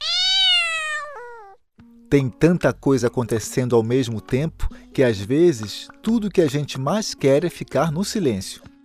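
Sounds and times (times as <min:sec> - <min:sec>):
cat meowing: 0:00.0 - 0:01.6
speech: 0:02.1 - 0:08.7.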